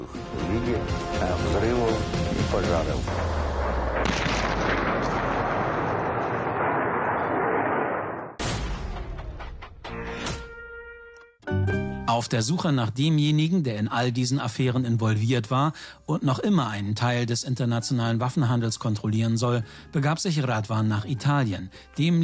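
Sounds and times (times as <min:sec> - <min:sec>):
speech: 0:00.0 - 0:05.3, 0:12.2 - 0:22.2
booming blasts and artillery-like explosions amid flames: 0:02.9 - 0:09.7.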